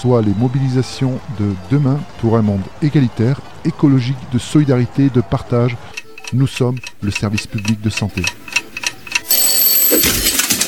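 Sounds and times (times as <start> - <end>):
speech: 0.0 - 8.5
alarm clock ringing: 6.0 - 10.2.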